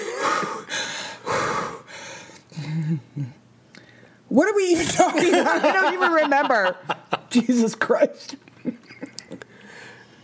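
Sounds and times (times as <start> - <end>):
person gasping and wheezing: 0.0 - 3.4
speech: 2.9 - 3.4, 4.3 - 8.4
laughter: 5.0 - 7.4.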